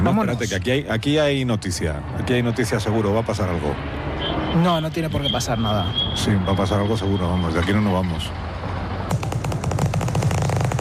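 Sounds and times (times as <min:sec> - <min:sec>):
speech: 0:00.0 - 0:08.5
machine-gun fire from gangsters shooting: 0:09.1 - 0:10.7.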